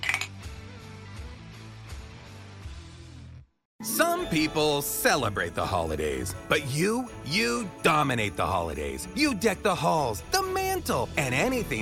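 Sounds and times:
glasses clinking in a toast: 0.0 - 0.3
music: 0.0 - 11.8
speech: 4.0 - 11.8.

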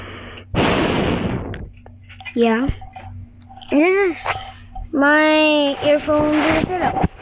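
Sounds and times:
breathing into a microphone held up to the mouth: 0.0 - 1.4
speech: 2.4 - 2.8, 3.7 - 7.1.

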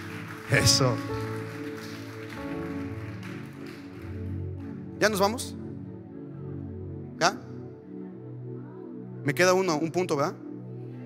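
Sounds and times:
crowd of women applauding: 0.0 - 5.2
speech: 0.5 - 1.3, 5.0 - 5.6, 7.2 - 7.4, 9.2 - 10.4.

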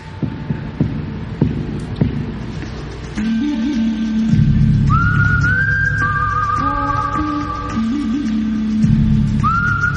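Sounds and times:
rhythmic throbbing low beats: 0.0 - 9.9
whistled spaghetti western film theme: 4.8 - 9.9.

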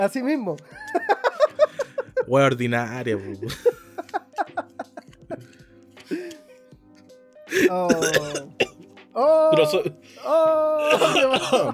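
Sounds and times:
speech: 0.0 - 1.1, 2.3 - 3.7, 7.7 - 8.5, 9.2 - 11.7
laughter: 0.7 - 2.3, 3.2 - 6.3, 10.8 - 11.7
person coughing after choking on water: 7.5 - 8.8, 10.8 - 11.7
raspy throat-clearing: 7.6 - 8.8.

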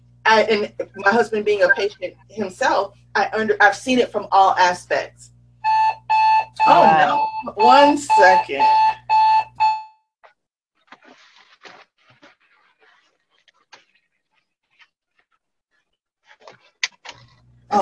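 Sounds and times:
speech: 0.3 - 5.3, 6.6 - 8.9
loud rapid electronic alarm bursts: 1.5 - 1.9, 5.6 - 10.0
quiet rustling and handling noises: 10.8 - 17.6.

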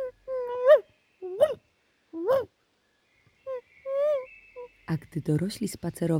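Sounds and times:
dogs whimpering in the distance: 0.0 - 1.6, 2.2 - 2.5, 3.5 - 4.3
speech: 4.9 - 6.1.

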